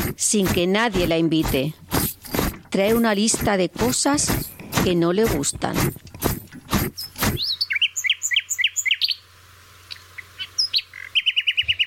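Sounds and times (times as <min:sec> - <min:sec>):
sharp bursts of noise: 0:00.0 - 0:11.2
low steady hum: 0:00.0 - 0:11.8
speech: 0:00.2 - 0:01.9, 0:02.7 - 0:06.3
birds chirping and singing: 0:06.9 - 0:09.3, 0:09.9 - 0:11.8.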